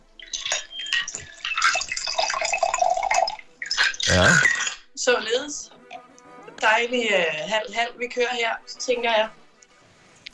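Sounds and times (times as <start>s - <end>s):
orange and sea buckthorn sparkling water with spirits poured into a chilled wine glass: 0.2s - 4.5s
speech: 4.1s - 5.7s, 6.6s - 9.4s.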